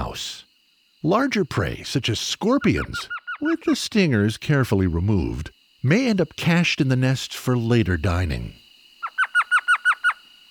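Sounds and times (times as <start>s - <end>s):
speech: 1.0s - 8.6s
Elf Owl yelping: 2.6s - 3.5s, 9.0s - 10.3s.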